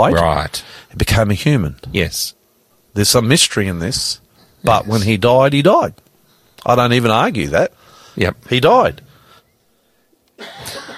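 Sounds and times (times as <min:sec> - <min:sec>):
speech: 0:00.0 - 0:06.0, 0:06.6 - 0:09.1
person coughing: 0:10.4 - 0:10.9.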